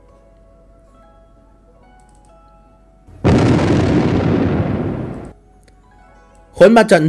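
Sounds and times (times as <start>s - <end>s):
huge explosion: 3.2s - 5.3s.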